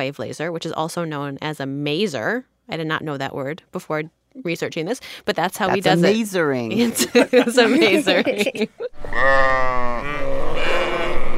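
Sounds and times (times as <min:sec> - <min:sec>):
speech: 0:00.0 - 0:10.3
laughter: 0:06.8 - 0:09.0
sheep bleat sound effect: 0:09.1 - 0:11.3.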